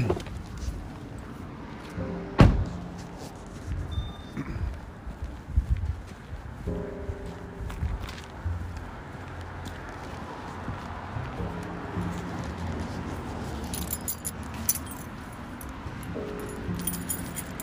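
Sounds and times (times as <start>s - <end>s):
low rumble of traffic or an idling car outdoors: 0.0s - 17.6s
keys jangling and clinking at a lock: 13.6s - 17.6s.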